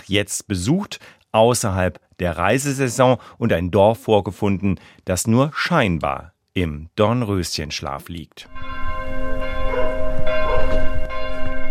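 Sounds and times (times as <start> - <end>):
speech: 0.1 - 8.9
protestant church bells ringing: 8.5 - 11.6.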